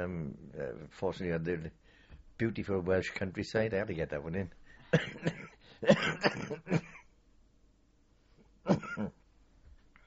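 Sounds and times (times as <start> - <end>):
speech: 0.0 - 6.9, 8.7 - 9.2
person coughing harshly: 4.9 - 7.1, 8.7 - 9.2.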